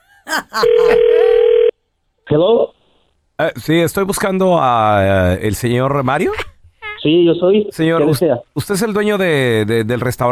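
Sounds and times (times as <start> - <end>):
speech: 0.3 - 1.0, 2.3 - 2.7, 3.4 - 6.4, 7.0 - 10.3
telephone ringing tone of a call being dialed: 0.6 - 1.8.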